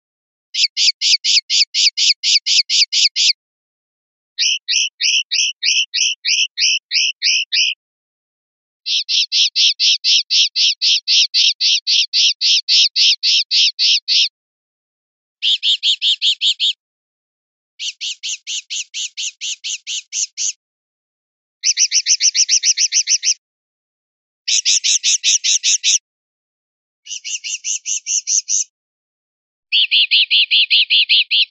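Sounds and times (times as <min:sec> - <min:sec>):
linnet calling: 0:00.5 - 0:03.4, 0:04.4 - 0:07.8, 0:08.9 - 0:14.3, 0:15.4 - 0:16.8, 0:17.8 - 0:20.6, 0:21.6 - 0:23.4, 0:24.5 - 0:26.0, 0:27.1 - 0:28.7, 0:29.7 - 0:31.5.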